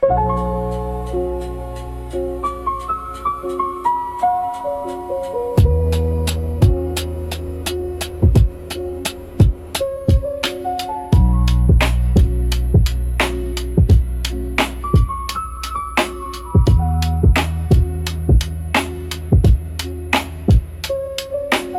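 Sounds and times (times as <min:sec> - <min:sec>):
dark rhythmic lo-fi piano music for meditation: 0:00.0 - 0:21.7.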